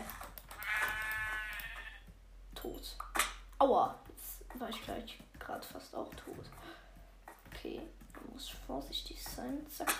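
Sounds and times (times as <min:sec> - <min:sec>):
sheep bleating with a wavering nasal tone: 0:00.6 - 0:02.1
speech: 0:02.6 - 0:06.8, 0:07.6 - 0:09.9.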